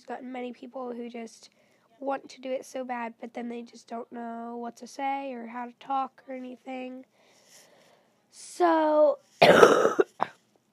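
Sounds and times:
speech: 0:00.1 - 0:07.2, 0:08.3 - 0:10.0
person coughing: 0:09.4 - 0:10.4.

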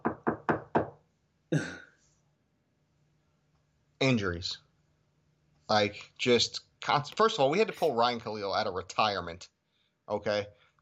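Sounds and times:
knuckles knocking on wood: 0:00.0 - 0:01.0
speech: 0:04.0 - 0:04.6, 0:05.7 - 0:10.8.

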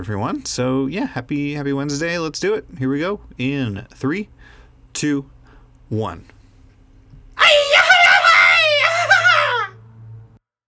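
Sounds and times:
speech: 0:00.0 - 0:06.4
low steady hum: 0:00.0 - 0:10.4
cathartic scream from a couple of voices together: 0:07.4 - 0:09.8.

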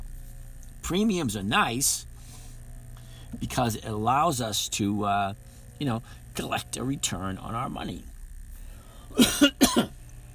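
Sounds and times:
speech: 0:00.9 - 0:02.1, 0:03.3 - 0:08.1, 0:09.2 - 0:09.9
person coughing: 0:09.1 - 0:10.0.

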